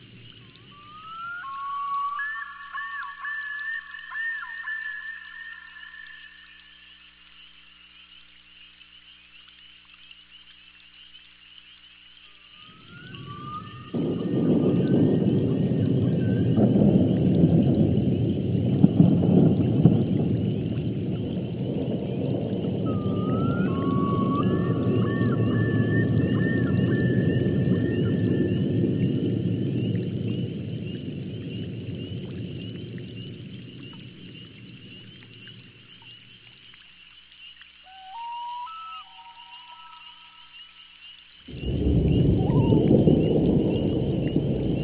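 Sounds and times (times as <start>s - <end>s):
thunder: 0.0s - 2.9s, 12.7s - 36.4s, 41.5s - 44.8s.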